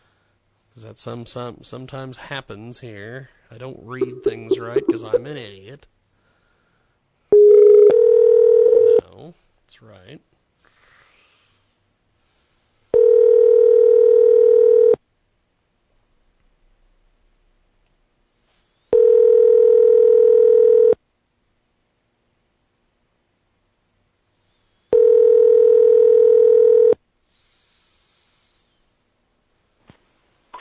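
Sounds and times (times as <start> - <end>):
speech: 0.8 - 6.0, 9.2 - 10.3
telephone line tone on a traditional phone: 4.0 - 5.3, 7.4 - 9.0, 13.0 - 15.0, 19.0 - 21.0, 25.0 - 27.0.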